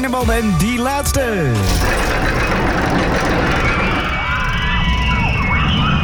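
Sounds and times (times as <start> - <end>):
speech: 0.2 - 2.4
roller coaster in Appelscha racing past: 1.7 - 6.0.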